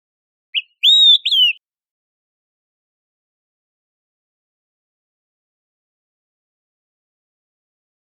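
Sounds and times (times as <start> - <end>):
olive-sided flycatcher song: 0.6 - 1.6.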